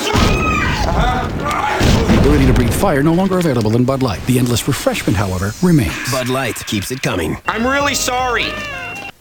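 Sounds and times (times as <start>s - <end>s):
low rumbling thuds: 0.2s - 5.1s
speech: 2.5s - 8.9s
cat meowing: 5.9s - 9.1s.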